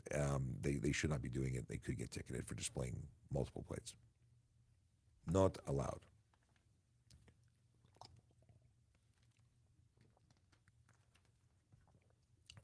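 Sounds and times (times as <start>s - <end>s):
speech: 0.0s - 4.1s, 5.2s - 6.1s
person drinking water: 6.3s - 12.6s.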